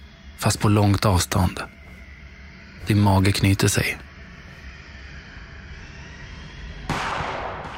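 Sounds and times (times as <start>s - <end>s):
speech: 0.4s - 1.8s, 2.8s - 4.1s
single gunshot echoing off hard surfaces: 6.9s - 7.7s.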